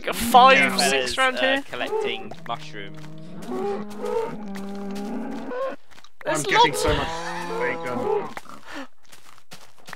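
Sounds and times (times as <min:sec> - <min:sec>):
cows mooing: 0:00.0 - 0:05.8, 0:06.5 - 0:08.4
speech: 0:00.1 - 0:08.9.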